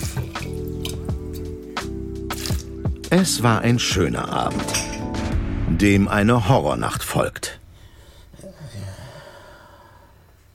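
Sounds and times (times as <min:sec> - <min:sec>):
water dripping: 0:00.0 - 0:03.1
speech: 0:03.1 - 0:04.9, 0:05.7 - 0:07.6.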